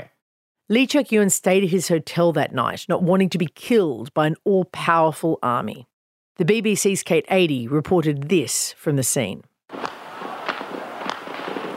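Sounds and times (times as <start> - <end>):
speech: 0.7 - 9.9
faint scattered pops: 9.7 - 11.7
gunfire echoing through city streets: 9.7 - 11.7.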